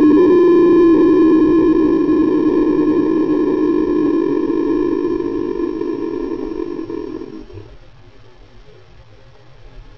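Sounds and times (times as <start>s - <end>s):
red-tailed hawk call slowed down: 0.0s - 7.8s.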